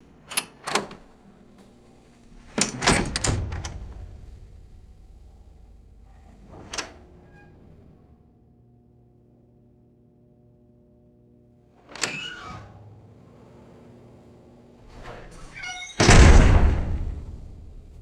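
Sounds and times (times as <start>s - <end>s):
heavy metal door opening and closing: 0.1s - 8.1s, 11.9s - 17.9s.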